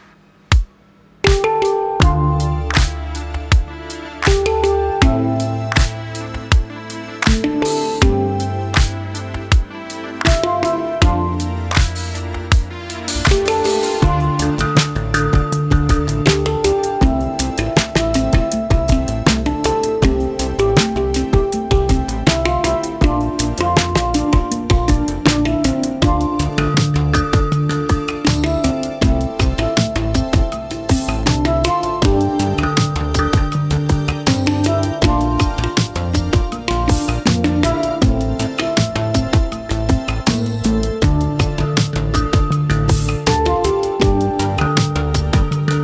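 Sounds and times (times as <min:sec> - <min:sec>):
handpan playing: 0:00.5 - 0:45.8.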